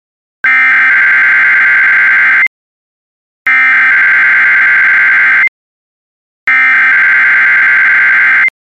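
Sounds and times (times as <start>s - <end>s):
NOAA All Hazards Radio public warning alarm tones: 0.4s - 2.5s, 3.5s - 5.5s, 6.5s - 8.6s.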